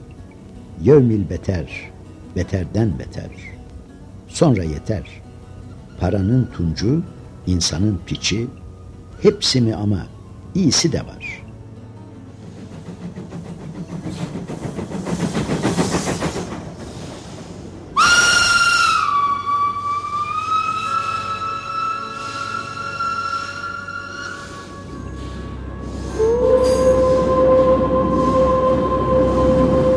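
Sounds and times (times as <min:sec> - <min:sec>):
speech: 0:00.8 - 0:03.6, 0:04.3 - 0:05.2, 0:06.0 - 0:08.6, 0:09.2 - 0:11.2
train engine rumbling at station platform: 0:06.1 - 0:29.9
train whistle blasting as train departs station: 0:18.0 - 0:29.9.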